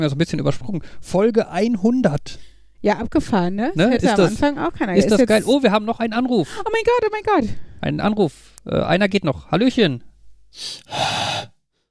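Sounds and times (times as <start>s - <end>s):
speech: 0.0s - 11.5s
heavy breathing on a phone call: 10.6s - 11.6s.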